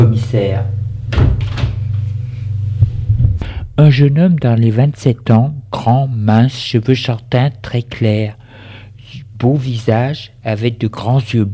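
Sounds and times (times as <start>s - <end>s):
speech: 0.0s - 1.3s, 3.8s - 8.4s, 9.4s - 11.5s
steady low hum: 0.0s - 11.5s
door opening: 1.1s - 1.8s.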